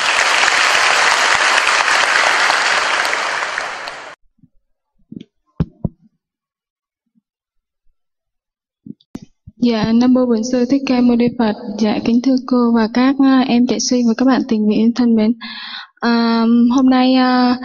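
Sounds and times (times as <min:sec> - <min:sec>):
crowd applauding to welcome a volunteer storyteller: 0:00.0 - 0:04.2
scattered soft thumps: 0:05.0 - 0:06.1
speech: 0:09.6 - 0:17.6.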